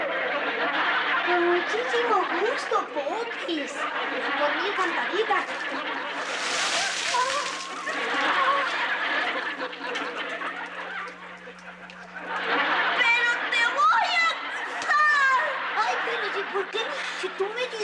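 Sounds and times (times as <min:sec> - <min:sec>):
laughter: 0:00.0 - 0:17.8
people chattering and snickering: 0:00.0 - 0:17.8
speech: 0:01.3 - 0:06.4, 0:16.5 - 0:17.8
water thrown and splashing on a person: 0:06.2 - 0:08.8
water dripping: 0:06.2 - 0:12.5.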